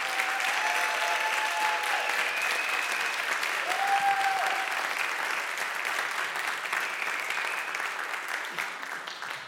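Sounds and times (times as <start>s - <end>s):
audience applause in a church: 0.0s - 9.4s.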